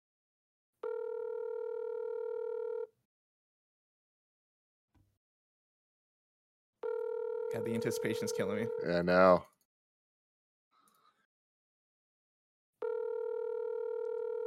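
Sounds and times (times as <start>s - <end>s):
phone ringback tone: 0.8s - 2.9s, 6.8s - 9.3s, 12.8s - 14.4s
speech: 7.6s - 9.5s.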